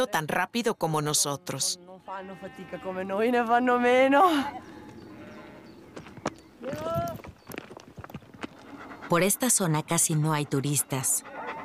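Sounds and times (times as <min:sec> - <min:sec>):
speech: 0:00.0 - 0:04.8, 0:09.1 - 0:11.4
sheep hooves walking on a narrow rocky path: 0:04.6 - 0:10.4.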